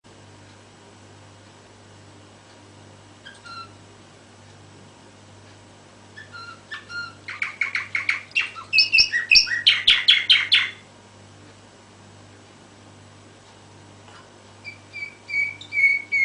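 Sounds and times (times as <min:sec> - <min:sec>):
canary singing: 0:03.2 - 0:03.8, 0:06.2 - 0:10.9, 0:14.6 - 0:16.2.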